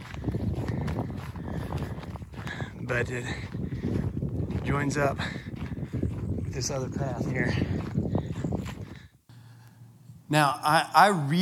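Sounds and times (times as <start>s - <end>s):
horse hooves clip-clopping on a worn path: 0.0s - 8.9s
wind rushing across the microphone: 0.0s - 9.2s
speech: 2.9s - 4.0s, 4.7s - 5.5s, 6.6s - 8.0s, 10.3s - 11.4s.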